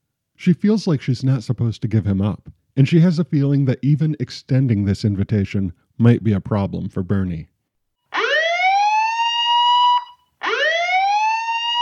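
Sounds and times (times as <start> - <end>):
speech: 0.4 - 7.5
electronic alarm wailing in a warehouse: 8.1 - 11.8.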